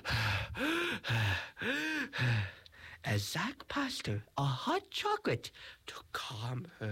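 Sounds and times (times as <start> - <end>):
voice imitating a young woman's heavy panicked breathing: 0.0 - 3.0
speech: 1.6 - 6.9.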